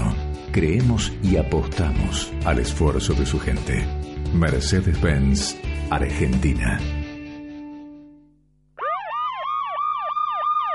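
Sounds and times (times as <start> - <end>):
speech: 0.5 - 7.0
emergency siren wailing: 8.8 - 10.7.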